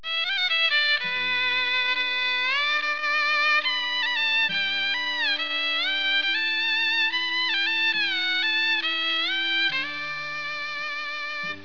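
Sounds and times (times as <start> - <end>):
gaohu: 0.0 - 11.6.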